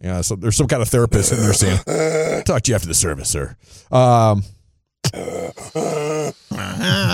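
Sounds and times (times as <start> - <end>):
speech: 0.0 - 7.1
preacher strained vocalizing: 1.2 - 2.5, 5.0 - 7.1
preacher heavy gasping breaths: 5.1 - 7.1.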